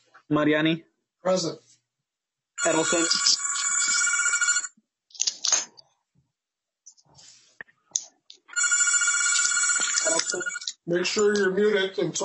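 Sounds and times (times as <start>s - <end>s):
speech: 0.3s - 1.7s, 2.6s - 3.3s, 10.9s - 12.2s
phone ringing in bright buzzy bursts: 2.6s - 4.7s, 8.5s - 11.8s
shuffling noises: 6.9s - 7.6s.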